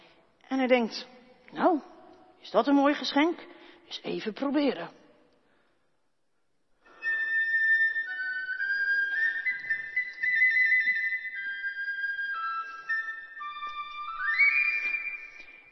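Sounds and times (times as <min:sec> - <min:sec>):
speech: 0:00.5 - 0:05.0
flute playing a clear breathy melody: 0:06.9 - 0:15.7.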